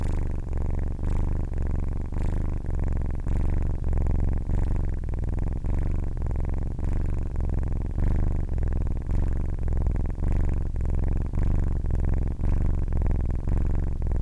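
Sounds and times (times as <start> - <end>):
male domestic kitten purring at night: 0.0 - 14.2.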